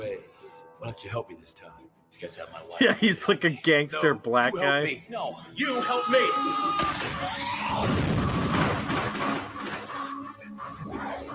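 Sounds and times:
speech: 0.2 - 9.4
cinematic movie explosion with deep booming rumble: 7.8 - 9.4
debris crashing: 7.8 - 10.3.

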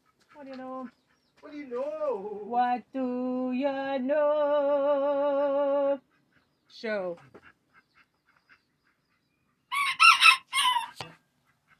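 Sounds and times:
speech: 0.4 - 6.1, 6.7 - 7.4
rooster crowing: 9.7 - 11.1.

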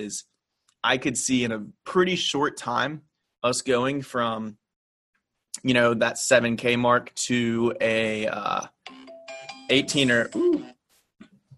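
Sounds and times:
speech: 0.0 - 4.6, 5.6 - 8.8, 9.7 - 10.8
phone alarm ringtone with electronic tones: 8.8 - 10.8.

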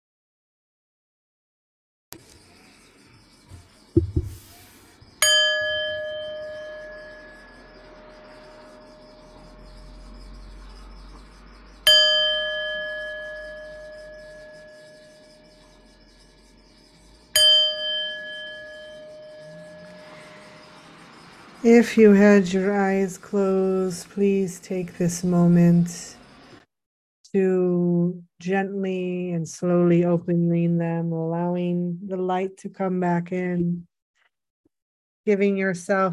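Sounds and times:
meditation bell struck in a quiet room: 5.2 - 9.7, 11.8 - 15.6, 17.3 - 21.0
speech: 21.6 - 26.2, 27.4 - 27.7, 28.4 - 33.9, 35.2 - 36.1.

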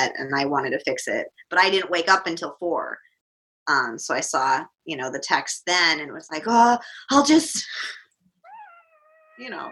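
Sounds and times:
speech: 0.0 - 3.1, 3.7 - 8.0, 9.4 - 9.7
cat meowing: 8.4 - 9.7.

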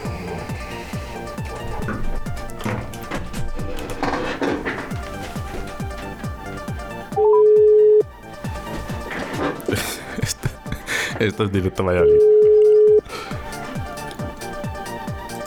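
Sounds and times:
busy clattering noise: 0.0 - 15.4
outgoing phone call ringing tone beep during a live radio broadcast: 7.2 - 8.1, 12.0 - 13.0
laughter: 9.1 - 12.1
speech: 11.2 - 12.5.

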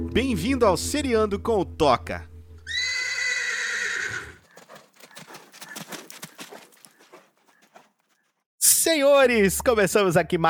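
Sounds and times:
speech: 0.2 - 2.8, 8.9 - 10.4
horse neighing: 2.7 - 7.9
horse hooves clopping on a hard surface: 4.1 - 8.4.

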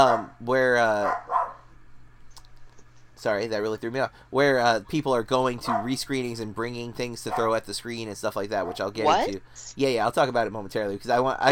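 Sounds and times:
upset dog barking and whining: 0.0 - 0.3, 1.0 - 1.6, 5.6 - 6.0, 8.6 - 8.9
speech: 0.0 - 1.4, 3.2 - 11.5
faint steady hum: 0.0 - 11.5.

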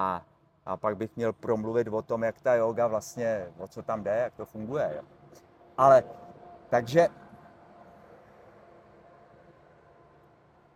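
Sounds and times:
speech: 0.0 - 7.2
train rolling past in Prague: 4.0 - 10.7.

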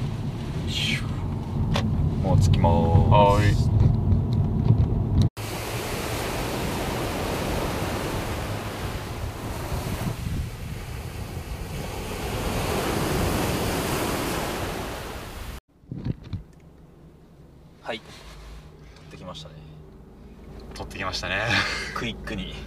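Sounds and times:
gusty wind buffeting the microphone: 0.0 - 16.5
speech: 2.3 - 3.8
ocean waves washing onto a sandy beach at sunset: 5.4 - 15.6.

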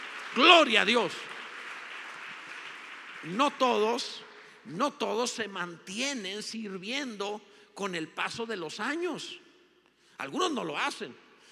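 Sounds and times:
congregation applauding: 0.0 - 5.5
speech: 0.4 - 1.3, 3.2 - 9.4, 10.2 - 11.2.

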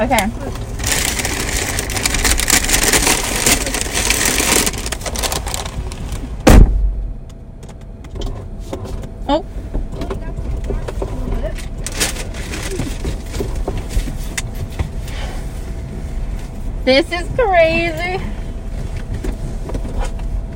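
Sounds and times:
speech: 0.0 - 0.7, 16.9 - 18.3
idling car rumble: 0.0 - 20.5
sharp thump inside a car: 6.4 - 7.2.

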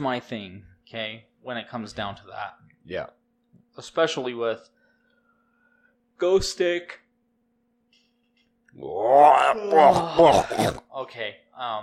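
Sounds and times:
speech: 0.0 - 3.2, 3.8 - 4.8, 6.2 - 7.0, 8.8 - 11.8
person yawning with a groaning tone: 8.8 - 10.8.

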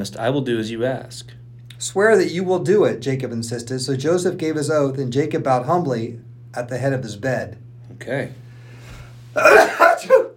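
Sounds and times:
speech: 0.0 - 8.4, 9.3 - 10.2
loud sneeze: 9.4 - 10.3.

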